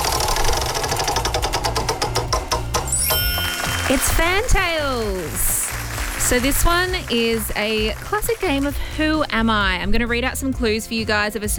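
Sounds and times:
game show prize wheel spinning with ratcheting clicks: 0.0s - 8.8s
speech: 3.9s - 5.6s, 6.3s - 11.5s.

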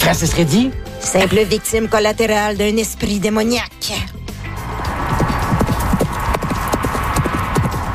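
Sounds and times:
speech: 0.1s - 4.2s
wild horses' hooves clip-clopping as horses trot on an island by the sea: 4.6s - 7.9s.

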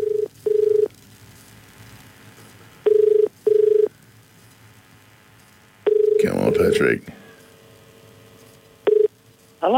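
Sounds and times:
phone line double-pulse ringing tone: 0.0s - 0.9s, 2.9s - 3.9s, 5.9s - 6.8s, 8.9s - 9.1s
faint phone line hiss: 0.0s - 9.7s
rustling noise as the call connects: 0.9s - 2.8s, 8.2s - 9.6s
speech: 6.6s - 7.2s.

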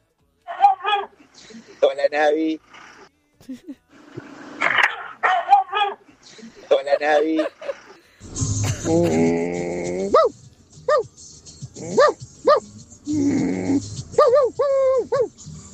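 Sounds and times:
angry dog barking sharply: 0.5s - 1.2s, 4.7s - 6.0s, 10.0s - 11.1s, 11.8s - 12.7s, 14.1s - 15.4s
speech: 1.8s - 2.8s, 3.5s - 3.9s, 6.4s - 7.7s, 8.8s - 9.6s
laughter: 6.3s - 9.8s.

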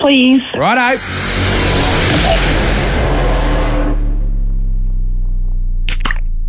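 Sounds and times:
speech: 0.0s - 1.4s, 2.2s - 2.9s
broad rushing noise: 0.6s - 4.8s
beer can cracked open: 5.9s - 6.3s.

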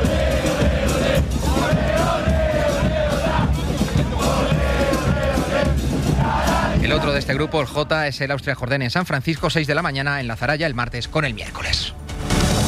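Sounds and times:
football fans roaring: 0.0s - 7.9s
speech: 7.2s - 12.0s.

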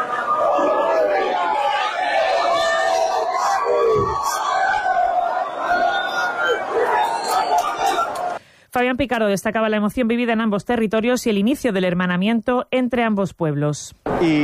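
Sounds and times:
crowd of citizens babbling while crossing a border: 0.0s - 8.4s
speech: 8.8s - 14.4s.

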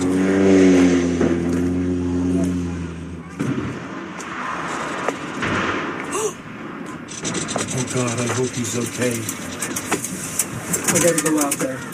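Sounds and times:
seaplane engine drone in the San Juan Islands: 0.0s - 11.9s
seaplane crash in the San Juan Islands: 3.4s - 11.1s
speech: 8.0s - 9.5s, 10.9s - 11.9s.

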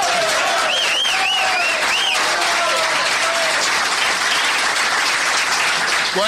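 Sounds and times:
audience applause: 0.0s - 6.2s
high whistles: 0.6s - 2.2s.

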